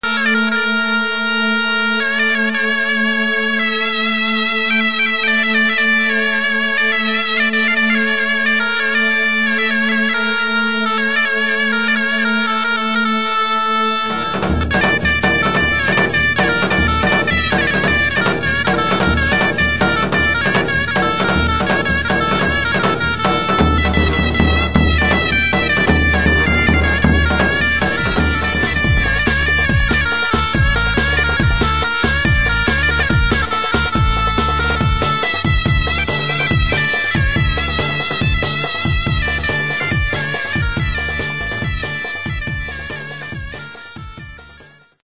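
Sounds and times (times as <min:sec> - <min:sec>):
zurna playing arabesk music: 0:00.0 - 0:45.0.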